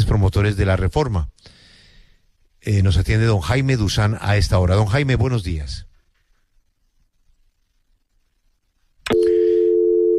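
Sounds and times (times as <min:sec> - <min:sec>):
speech: 0:00.3 - 0:01.4, 0:02.6 - 0:05.9
telephone dial tone after a dropped call: 0:09.1 - 0:10.1.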